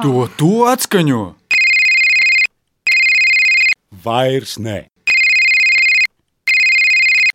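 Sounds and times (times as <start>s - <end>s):
speech: 0.0s - 1.4s, 4.0s - 4.9s
loud electronic phone ringtone ringing: 1.5s - 3.8s, 5.1s - 7.3s.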